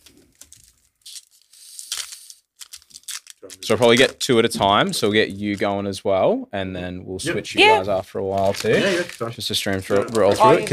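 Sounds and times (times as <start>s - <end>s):
trading card pack foil being torn open: 0.0s - 4.2s, 8.3s - 10.7s
speech: 3.4s - 10.7s.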